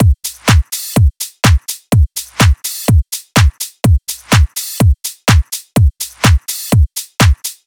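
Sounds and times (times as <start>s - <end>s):
drum loop at 125 BPM: 0.0s - 7.6s.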